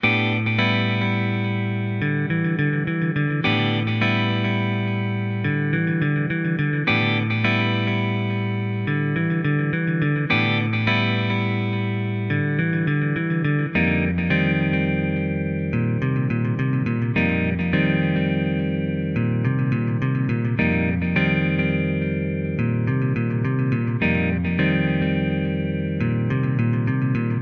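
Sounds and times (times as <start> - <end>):
blues guitar rhythm in E minor and C minor: 0.0 - 27.4.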